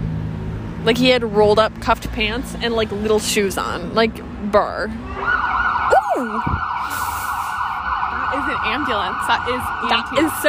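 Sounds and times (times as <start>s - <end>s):
speech: 0.8s - 5.6s, 6.2s - 7.2s, 8.3s - 10.4s
emergency siren wailing on a city street: 4.9s - 10.4s.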